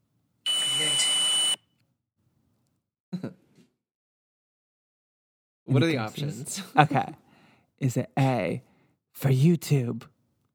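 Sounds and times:
loud electronic beep from paranormal investigation equipment: 0.5 - 1.6
speech: 5.7 - 7.2, 7.8 - 10.1.

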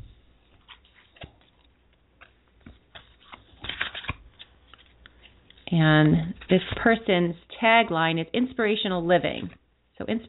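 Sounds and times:
tarot cards being shuffled: 0.5 - 7.0
speech: 5.7 - 10.2.

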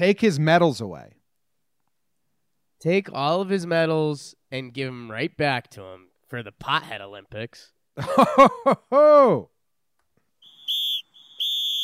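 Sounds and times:
speech: 0.0 - 1.2, 2.8 - 9.5
laughter: 8.0 - 9.0
loud shrill whistle blasts: 10.4 - 11.8.

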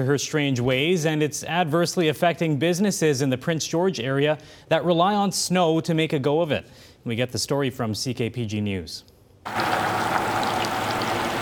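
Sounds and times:
speech: 0.0 - 9.8
trickling meltwater outside: 9.5 - 11.4.

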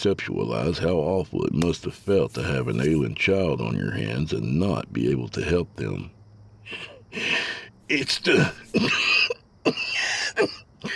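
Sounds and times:
speech: 0.0 - 10.9
breathy hissing breath between coughs: 6.7 - 10.9
man coughing: 8.0 - 10.9.

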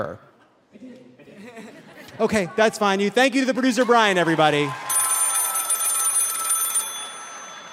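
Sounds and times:
speech: 0.0 - 1.0, 2.2 - 4.8
laughter: 0.8 - 2.8
telephone ringing with a metallic bell trill: 4.9 - 7.7.

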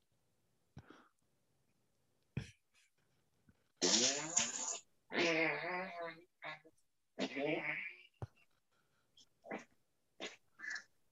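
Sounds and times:
loud buzzy farts: 3.8 - 6.6, 7.2 - 8.0.

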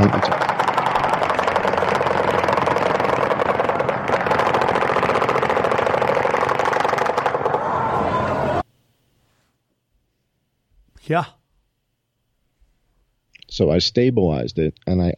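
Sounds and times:
speech: 0.0 - 0.4, 11.1 - 11.4, 13.6 - 15.1
automatic gunfire in a video clip: 0.0 - 7.6
faint engine-like drone: 0.0 - 8.6.

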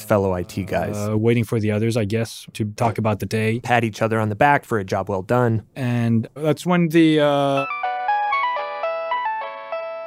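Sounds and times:
speech: 0.1 - 7.8
phone ringtone playing a bright electronic melody: 7.5 - 10.0.

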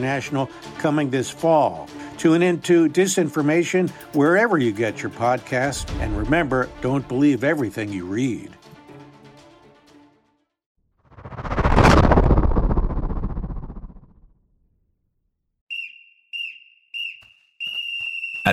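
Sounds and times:
speech: 0.0 - 8.6
whoosh of noise: 11.1 - 14.1
shrill whistle blown to wake prisoners: 15.7 - 18.5.

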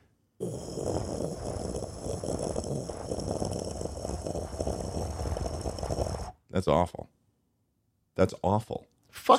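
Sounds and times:
person vocally imitating spaceship ambient hum: 0.4 - 6.3
speech: 6.6 - 7.1, 8.2 - 9.3.

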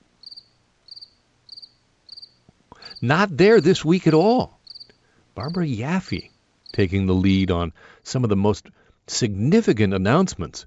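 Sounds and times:
crickets chirping: 0.2 - 7.4
speech: 2.9 - 4.6, 5.4 - 10.6.

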